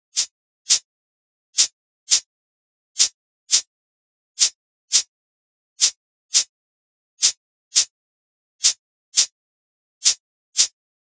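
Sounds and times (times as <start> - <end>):
reggae shaker loop: 0.2 - 0.8, 3.0 - 3.7, 4.4 - 5.1, 5.8 - 6.5, 7.2 - 7.9, 8.6 - 9.3, 10.0 - 10.8.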